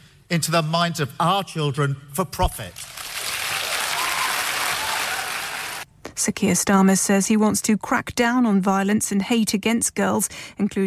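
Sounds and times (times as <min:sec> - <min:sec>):
speech: 0:00.3 - 0:03.0, 0:06.2 - 0:10.8
large indoor audience applauding at a party conference: 0:02.8 - 0:05.8.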